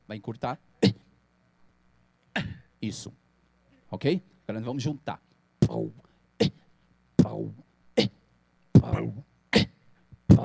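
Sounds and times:
speech: 0.1s - 1.0s, 2.4s - 3.2s, 3.9s - 6.6s
shortened coughs used as beatbox snare: 0.8s - 1.1s, 2.3s - 2.7s, 8.0s - 8.2s, 8.8s - 10.4s.

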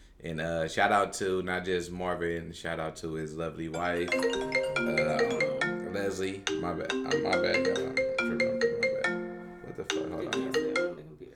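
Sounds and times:
speech: 0.2s - 5.4s, 6.0s - 8.4s
phone ringtone playing a bright looping electronic melody: 3.8s - 11.2s.

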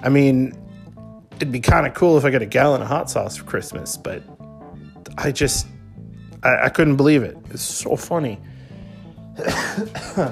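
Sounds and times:
speech: 0.0s - 0.6s, 1.3s - 4.4s, 5.1s - 5.8s, 6.4s - 8.6s, 9.4s - 10.3s
person coughing with a throat-clearing quality: 9.4s - 10.3s.

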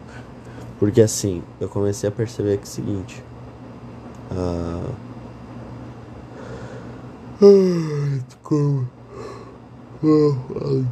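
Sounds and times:
speech: 0.8s - 3.3s, 4.3s - 5.1s, 7.4s - 9.0s, 10.0s - 10.9s
person yawning: 7.4s - 10.9s.

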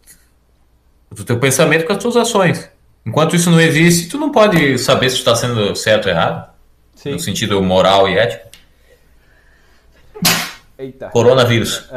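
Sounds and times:
speech: 1.2s - 8.5s, 10.2s - 11.9s
person sneezing: 10.1s - 10.7s.

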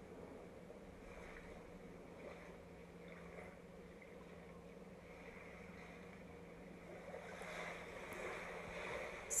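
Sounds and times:
faint wind-like breath: 0.0s - 3.6s, 5.0s - 9.3s
ocean waves washing against a shore: 0.0s - 9.3s.

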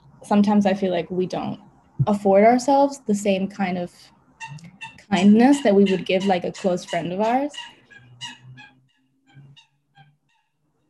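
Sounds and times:
speech: 0.2s - 8.4s
turkey gobbling: 4.3s - 10.6s.

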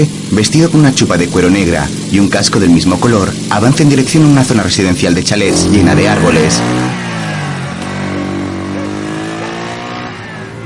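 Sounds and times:
speech: 0.0s - 6.9s
motorcycle engine roar passing at high speed: 0.0s - 10.6s.

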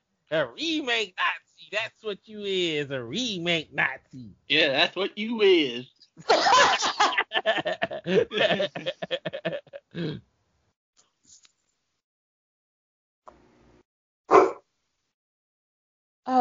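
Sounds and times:
speech: 0.3s - 6.8s, 7.4s - 10.3s
laughter: 4.5s - 10.1s
dog barking: 14.3s - 14.6s.

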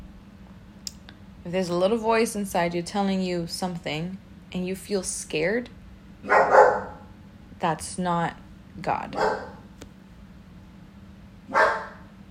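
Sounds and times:
speech: 1.4s - 6.6s, 7.6s - 9.5s
pet dog barking: 6.3s - 7.1s, 9.2s - 9.6s, 11.5s - 12.1s.

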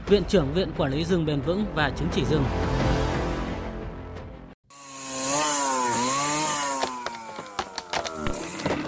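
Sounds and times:
speech: 0.1s - 2.8s
chainsaw felling trees in a forest: 4.7s - 8.8s
wood cracking and clattering: 6.8s - 8.8s.

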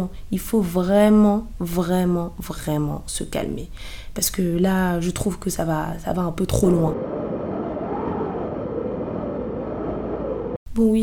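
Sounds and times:
speech: 0.0s - 7.2s, 10.8s - 11.0s
wind blowing: 6.8s - 10.6s.

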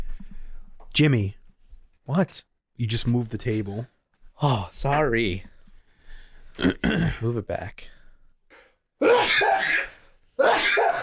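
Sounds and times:
speech: 1.0s - 1.4s, 2.1s - 5.5s, 6.6s - 8.0s
person sneezing: 8.5s - 11.0s.

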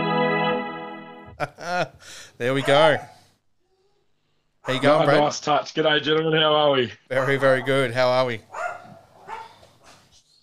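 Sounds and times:
laughter: 1.3s - 2.0s
speech: 1.4s - 3.1s, 4.6s - 8.6s
shepherd dog barking: 2.6s - 3.2s, 4.6s - 4.9s, 7.2s - 7.8s, 8.5s - 10.1s.

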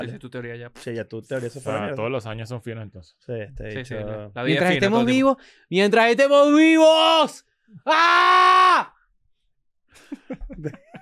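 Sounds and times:
speech: 0.0s - 9.0s, 10.0s - 10.8s
person screaming: 6.8s - 9.0s
people laughing: 10.0s - 11.0s.

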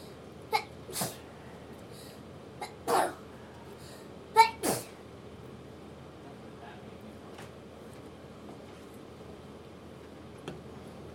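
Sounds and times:
person sneezing: 0.5s - 1.2s, 2.6s - 3.2s, 4.4s - 5.0s
person coughing: 2.6s - 3.2s.

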